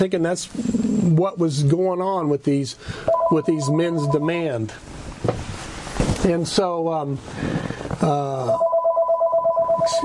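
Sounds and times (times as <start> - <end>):
speech: 0.0 - 5.6, 6.2 - 8.7
telephone ringing with a warbling electronic trill: 3.1 - 4.4, 8.5 - 10.0.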